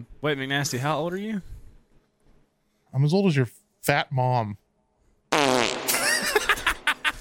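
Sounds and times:
speech: 0.1 - 1.6, 2.9 - 4.6
loud fart: 5.3 - 6.4
laughter: 5.9 - 7.1.

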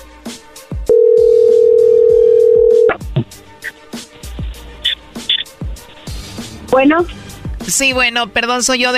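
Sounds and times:
telephone dial tone: 0.9 - 2.9
speech: 6.8 - 8.9.

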